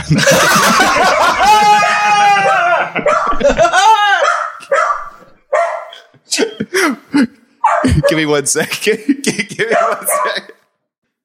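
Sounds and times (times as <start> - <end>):
laughter: 0.0 - 4.3, 6.1 - 10.6
speech: 0.1 - 1.8, 8.1 - 10.5
dog barking excitedly at a delivery: 2.4 - 3.6, 4.2 - 6.1, 7.6 - 8.3, 9.7 - 10.6.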